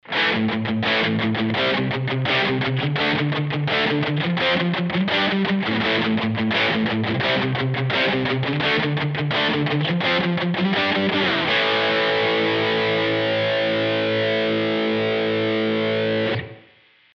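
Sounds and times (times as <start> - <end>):
guitar riff through an effects pedal: 0.0 - 17.1.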